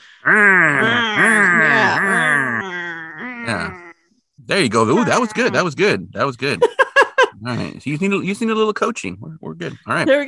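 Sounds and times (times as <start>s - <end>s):
speech: 0.2s - 1.0s, 4.5s - 6.7s, 7.4s - 10.2s
person's voice imitating a mummy's moan: 0.2s - 4.1s, 4.9s - 5.6s.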